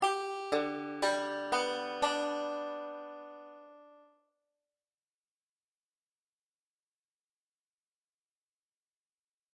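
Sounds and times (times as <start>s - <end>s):
five-string banjo open G chord: 0.0s - 4.1s.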